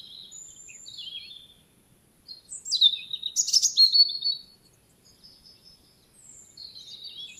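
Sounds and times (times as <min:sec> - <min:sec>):
European robin singing: 0:00.0 - 0:07.3.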